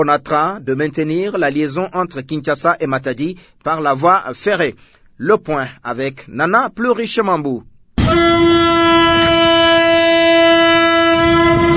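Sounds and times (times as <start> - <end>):
speech: 0.0 - 7.7
freight train horn blaring: 8.0 - 11.7
low rumble of freight train: 10.2 - 11.7.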